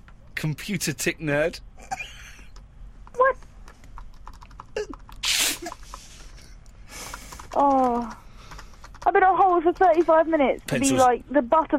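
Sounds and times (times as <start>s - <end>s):
speech: 0.4s - 2.1s, 7.6s - 8.2s, 9.6s - 11.7s
typing on a computer keyboard: 2.5s - 10.1s.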